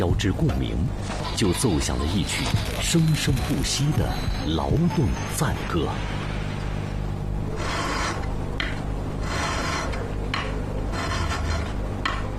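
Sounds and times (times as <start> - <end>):
speech: 0.0 - 6.4
steady low hum: 0.0 - 12.3
fitter's hand file rasping against a metal part for fighter aircraft: 7.6 - 8.3, 9.2 - 11.8.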